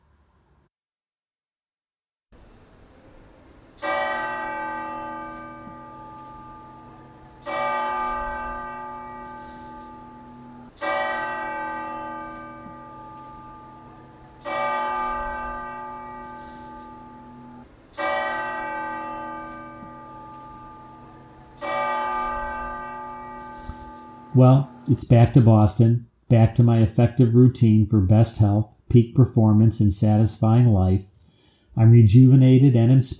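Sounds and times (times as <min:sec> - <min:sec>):
large cathedral church bell tolling: 0:03.8 - 0:25.4
speech: 0:24.4 - 0:31.1, 0:31.8 - 0:33.1.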